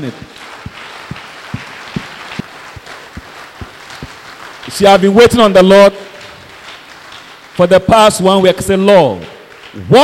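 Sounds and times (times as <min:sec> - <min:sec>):
speech: 0:00.0 - 0:00.5, 0:04.7 - 0:06.0, 0:07.6 - 0:10.0
constant wash of crowd noise: 0:00.0 - 0:06.6
crowd clapping in rhythm in thanks and praise: 0:00.0 - 0:10.0.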